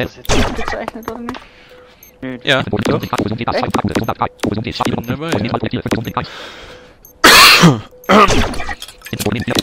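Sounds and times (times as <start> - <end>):
speech: 0.0 - 6.7, 7.6 - 9.6
loud harsh coughing: 7.2 - 8.8.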